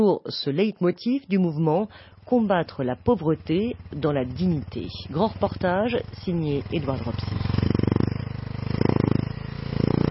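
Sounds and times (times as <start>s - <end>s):
speech: 0.0s - 7.8s
motorcycle engine riding through crowded market streets in Bangui: 1.2s - 10.0s.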